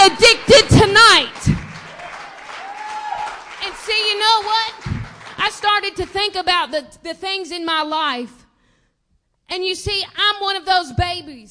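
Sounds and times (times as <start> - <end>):
audience clapping hands in praise: 0.0 - 6.4
speech: 6.4 - 8.4, 9.5 - 11.4.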